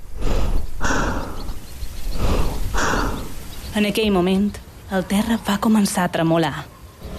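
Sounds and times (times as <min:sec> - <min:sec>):
fast heavy breathing through a gas mask: 0:00.0 - 0:03.5
speech: 0:03.8 - 0:06.7.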